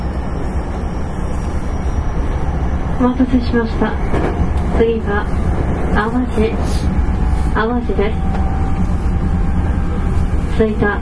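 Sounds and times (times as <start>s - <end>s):
electric limited express train rumbling on rails in Japan: 0.0s - 10.9s
speech: 3.0s - 7.0s, 7.6s - 8.4s, 10.6s - 10.9s.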